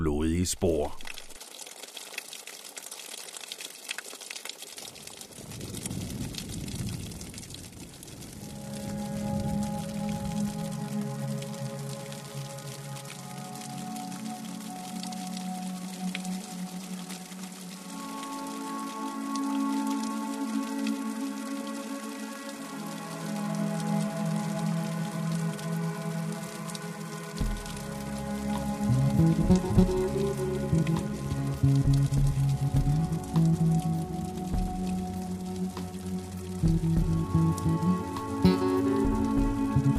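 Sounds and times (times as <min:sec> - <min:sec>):
steady rain pattering: 0:00.0 - 0:39.9
speech: 0:00.4 - 0:01.1.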